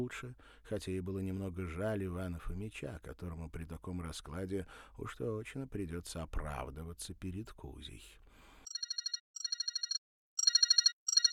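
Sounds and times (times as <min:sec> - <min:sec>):
speech: 0:00.0 - 0:08.2
telephone ringing in short trilling bursts: 0:08.7 - 0:11.3.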